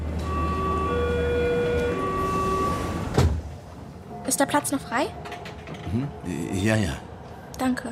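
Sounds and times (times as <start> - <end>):
subway train running with low rumble and high whine: 0.0 - 7.9
speech: 4.3 - 7.9.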